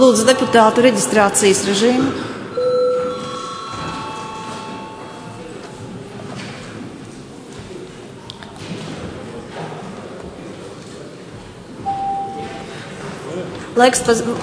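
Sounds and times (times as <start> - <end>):
speech: 0.0 - 2.3, 13.8 - 14.4
parliament chamber bell chime: 2.6 - 5.6.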